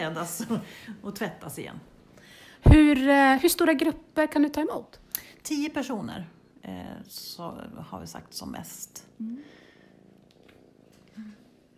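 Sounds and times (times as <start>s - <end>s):
speech: 0.0s - 1.9s, 2.6s - 9.6s, 11.2s - 11.4s
cat purring: 6.3s - 11.7s.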